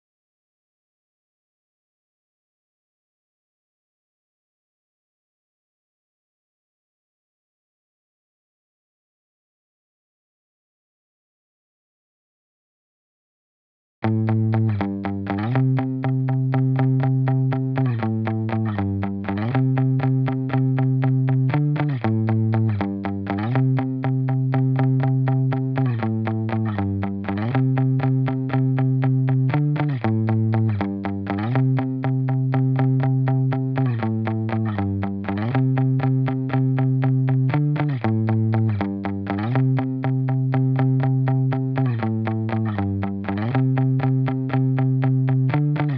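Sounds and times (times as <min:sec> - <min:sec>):
muted guitar loop in E minor: 0:14.0 - 0:45.9.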